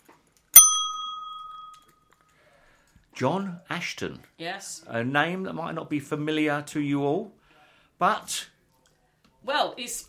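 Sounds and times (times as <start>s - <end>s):
bright bell ding: 0.6s - 2.0s
speech: 3.2s - 7.4s, 8.0s - 8.5s, 9.4s - 10.0s.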